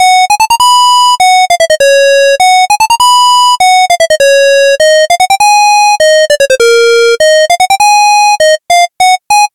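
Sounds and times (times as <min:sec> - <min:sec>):
simple phone ringtone beep: 0:00.0 - 0:09.5.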